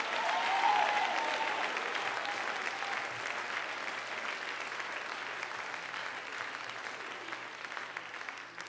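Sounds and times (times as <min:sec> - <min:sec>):
cheer or whoop: 0:00.0 - 0:03.1
large crowd applauding: 0:00.0 - 0:08.6.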